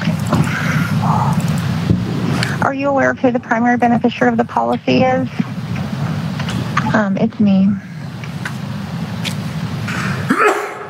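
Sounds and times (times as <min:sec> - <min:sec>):
steady low hum: 0:00.0 - 0:10.5
speech: 0:02.7 - 0:05.5, 0:06.9 - 0:07.9
sneeze: 0:09.9 - 0:10.8.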